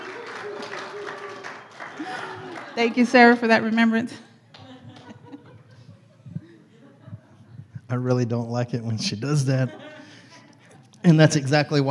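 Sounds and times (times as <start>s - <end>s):
audience applause: 0.0s - 5.1s
laughter: 0.0s - 11.8s
speech: 2.8s - 4.3s, 7.9s - 9.9s, 11.0s - 11.8s.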